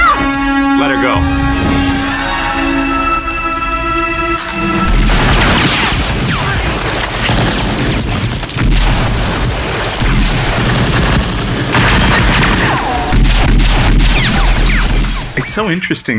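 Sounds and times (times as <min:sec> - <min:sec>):
brief sustained tone: 0:00.1 - 0:05.5
speech: 0:01.0 - 0:01.9, 0:15.6 - 0:16.1
booming blasts: 0:01.2 - 0:03.3, 0:04.7 - 0:15.4
loud cinematic battle gunfire: 0:04.9 - 0:15.4.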